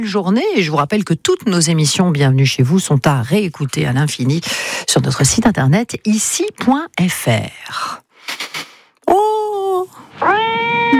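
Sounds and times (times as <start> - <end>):
speech: 0.0 - 8.0
cat meowing: 10.1 - 10.9.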